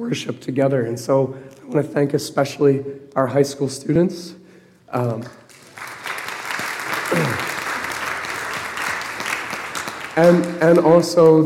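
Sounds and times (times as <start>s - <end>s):
speech: 0.0s - 5.4s, 10.2s - 11.4s
room full of people applauding: 5.3s - 11.4s.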